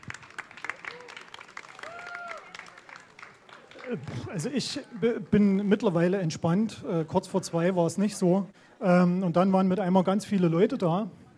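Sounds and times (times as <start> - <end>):
audience applauding with many hands clapping: 0.0 - 5.5
speech: 3.9 - 11.2.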